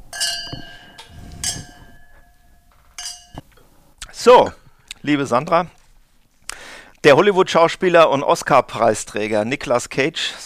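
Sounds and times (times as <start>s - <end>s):
glasses clinking together in a toast: 0.0s - 3.5s
speech: 4.2s - 5.8s, 7.0s - 10.4s.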